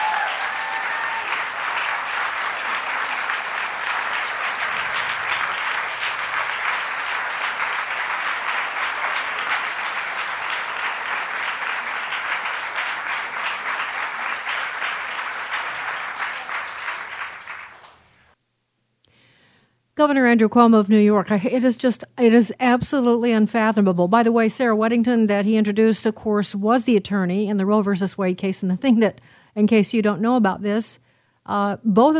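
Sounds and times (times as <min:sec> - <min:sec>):
large audience applause: 0:00.0 - 0:18.3
speech: 0:20.0 - 0:32.1.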